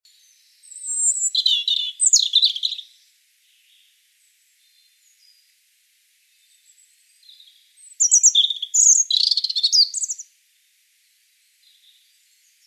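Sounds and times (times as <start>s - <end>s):
European robin song: 0.1s - 5.5s, 6.3s - 10.3s.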